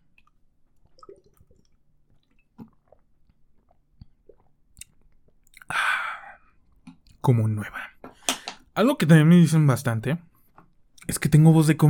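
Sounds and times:
person gulping water while drinking: 0:00.0 - 0:05.8
speech: 0:07.2 - 0:07.9, 0:08.8 - 0:10.3, 0:11.1 - 0:11.8.

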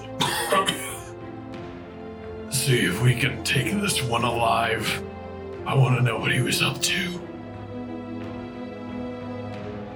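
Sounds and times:
cough: 0:00.0 - 0:01.1
speech: 0:02.6 - 0:05.1, 0:05.7 - 0:07.2.

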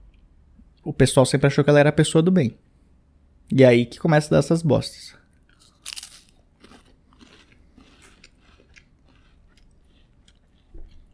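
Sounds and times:
speech: 0:00.8 - 0:02.7, 0:03.5 - 0:05.2
crunchy bites and chewing of a cookie: 0:05.4 - 0:11.1.

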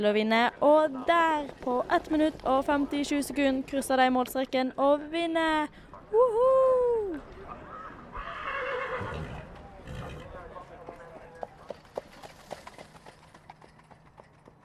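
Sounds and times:
speech: 0:00.0 - 0:07.3
horse hooves clip-clopping while walking: 0:01.1 - 0:04.5, 0:09.4 - 0:14.6
horse whinnying: 0:08.1 - 0:10.3.

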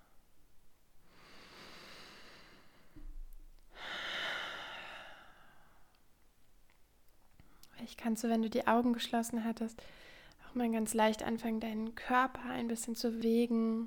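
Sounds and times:
deep conscious breath during a guided meditation: 0:01.0 - 0:03.1, 0:03.7 - 0:06.0, 0:09.8 - 0:10.4
speech: 0:07.9 - 0:13.8.

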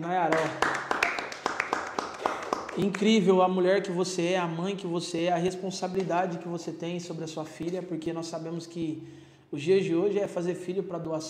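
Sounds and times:
speech: 0:00.0 - 0:00.8, 0:02.8 - 0:11.2
small group clapping: 0:00.2 - 0:03.3.

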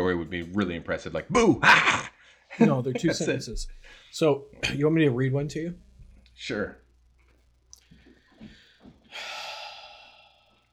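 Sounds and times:
speech: 0:00.1 - 0:05.8, 0:06.4 - 0:06.8
person making a deliberately scary breath: 0:08.2 - 0:10.7
long harsh hissing exhale: 0:09.1 - 0:10.5.

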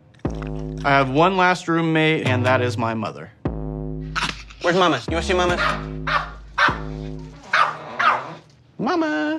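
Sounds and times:
speech: 0:00.4 - 0:03.4, 0:04.6 - 0:06.3
dog barking: 0:05.6 - 0:08.4.

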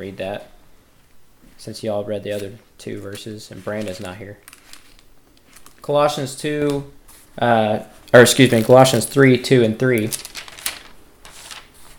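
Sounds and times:
speech: 0:00.0 - 0:00.6, 0:01.6 - 0:04.5, 0:05.8 - 0:10.3
thin pages of a paper Bible turning: 0:02.3 - 0:05.9, 0:08.2 - 0:11.9.

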